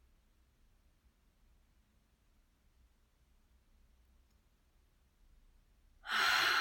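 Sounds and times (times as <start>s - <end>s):
inhale through the nose during a guided breathing exercise: 6.1s - 6.5s.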